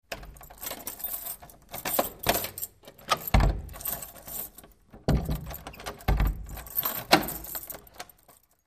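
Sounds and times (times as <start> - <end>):
heavy wooden door closing: 1.8 - 4.1, 4.9 - 7.9.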